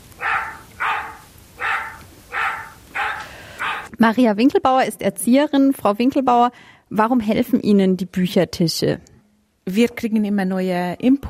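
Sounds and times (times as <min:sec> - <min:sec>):
dog barking: 0:00.0 - 0:03.9
faint hiss: 0:00.0 - 0:11.2
speech: 0:04.0 - 0:11.2.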